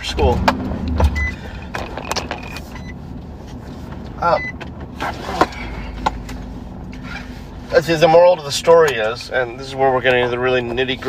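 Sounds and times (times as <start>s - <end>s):
car driving with low steady road rumble: 0.0s - 11.0s
speech: 0.2s - 0.6s, 4.2s - 5.2s, 7.8s - 11.0s
clicks and rattles: 1.7s - 2.6s.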